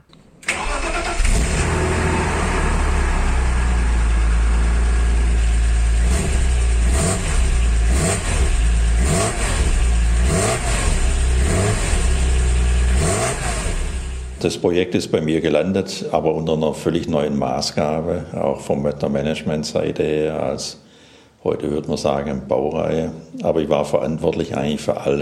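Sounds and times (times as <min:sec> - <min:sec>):
BMW Z3 M Coupé S54 straight-six engine starting and revving: 0:00.5 - 0:14.4
speech: 0:14.4 - 0:20.8, 0:21.4 - 0:25.2.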